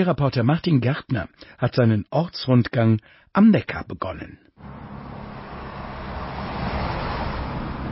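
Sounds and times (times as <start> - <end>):
speech: 0.0 - 4.9
heavy road traffic rumbling on a river bridge: 4.6 - 7.8.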